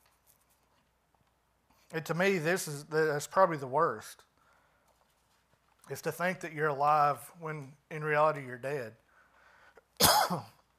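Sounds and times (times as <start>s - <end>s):
speech: 1.9s - 4.3s, 5.9s - 9.0s, 10.0s - 10.6s
person coughing: 10.0s - 10.6s.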